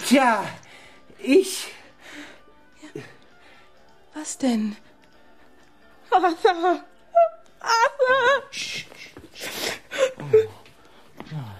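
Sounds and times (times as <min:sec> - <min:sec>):
speech: 0:00.1 - 0:00.6, 0:01.2 - 0:01.8, 0:02.9 - 0:03.2, 0:04.2 - 0:04.8, 0:06.1 - 0:10.6, 0:11.3 - 0:11.5
person crying and whimpering: 0:06.1 - 0:10.7.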